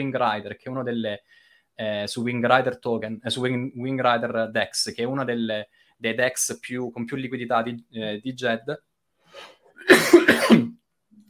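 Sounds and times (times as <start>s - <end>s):
speech: 0.0s - 10.7s
loud harsh cough: 9.8s - 10.8s.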